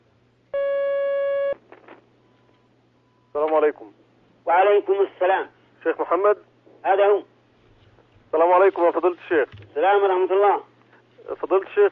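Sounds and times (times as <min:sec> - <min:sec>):
telephone line tone as a caller connects: 0:00.6 - 0:01.6
speech: 0:03.6 - 0:07.3, 0:08.3 - 0:10.7, 0:11.3 - 0:11.9
faint rustling: 0:07.5 - 0:09.9.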